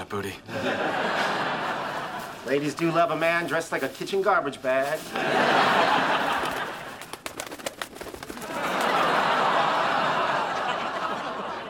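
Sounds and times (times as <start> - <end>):
speech: 0.1 - 1.3, 2.4 - 6.2
laughter: 0.4 - 3.3, 5.0 - 7.2, 8.3 - 11.6
pigeon wings fluttering: 6.0 - 9.4.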